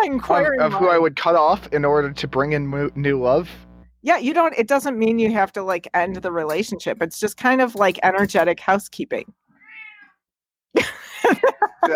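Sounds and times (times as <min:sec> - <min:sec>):
speech: 0:00.0 - 0:09.4, 0:10.7 - 0:11.9
cat meowing: 0:09.5 - 0:10.2
laughter: 0:10.8 - 0:11.9.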